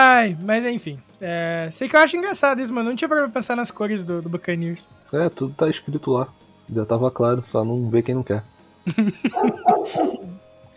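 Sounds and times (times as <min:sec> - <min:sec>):
speech: 0:00.2 - 0:10.4
laughter: 0:08.8 - 0:10.4
dog barking and yowling: 0:09.3 - 0:10.4.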